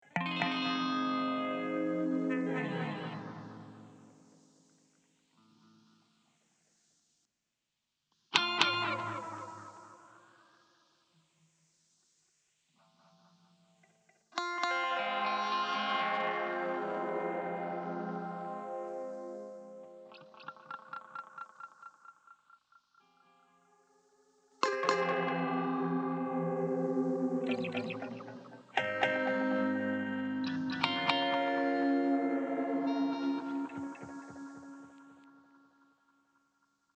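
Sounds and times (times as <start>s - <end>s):
guitar breakdown: 0.0s - 4.1s, 8.4s - 10.2s, 14.4s - 21.8s, 24.6s - 35.7s.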